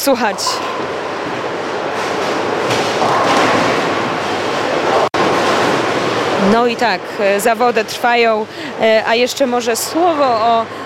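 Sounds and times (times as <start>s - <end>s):
speech: 0.0s - 1.5s, 6.4s - 10.8s
bowling ball rolling down a lane at a bowling competition: 0.3s - 7.0s.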